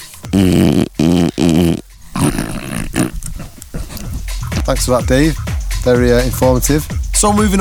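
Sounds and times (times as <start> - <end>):
French bulldog growling and grunting: 0.3 - 4.6
speech: 0.4 - 0.9, 4.8 - 7.6.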